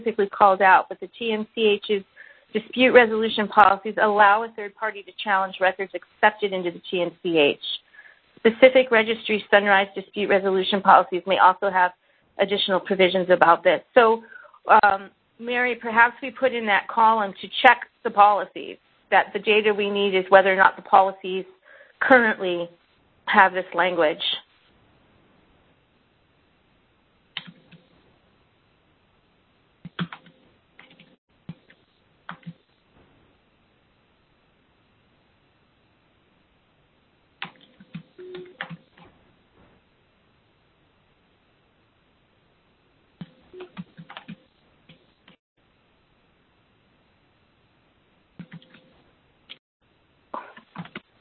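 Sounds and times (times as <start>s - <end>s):
speech: 0.0s - 7.8s, 8.4s - 24.5s
faint steady hiss: 0.0s - 51.1s
typing a message into an online meeting chat on a computer keyboard: 27.3s - 27.9s, 29.8s - 32.7s, 37.4s - 39.1s, 43.2s - 45.1s, 48.4s - 48.9s, 50.6s - 51.1s.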